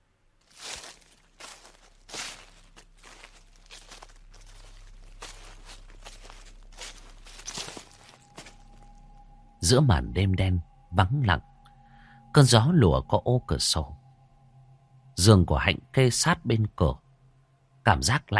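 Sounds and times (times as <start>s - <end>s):
faint steady low hum: 0.0s - 18.3s
footsteps rustling through a garden at night: 0.4s - 9.0s
speech: 9.7s - 11.5s, 12.4s - 14.0s, 15.2s - 17.0s, 17.8s - 18.3s.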